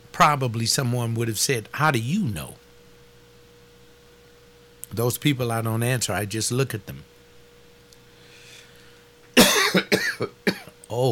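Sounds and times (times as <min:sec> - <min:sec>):
speech: 0:00.2 - 0:02.6, 0:04.9 - 0:07.1, 0:11.0 - 0:11.1
short fit of harsh raspy coughing: 0:09.4 - 0:10.8.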